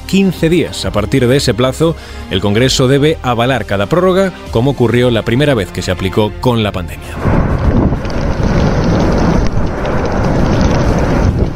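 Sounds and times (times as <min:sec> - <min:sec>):
speech: 0:00.1 - 0:07.8
lava fountain roaring from erupting volcano on La Palma: 0:07.1 - 0:11.5.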